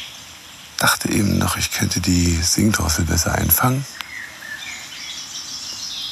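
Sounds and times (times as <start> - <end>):
tit calls: 0.8 - 4.0
speech: 1.0 - 4.0.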